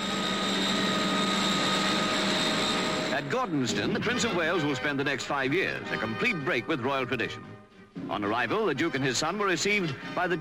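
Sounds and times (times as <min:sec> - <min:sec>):
Heron propeller aircraft engine droning: 0:00.0 - 0:05.9
speech: 0:03.4 - 0:10.3.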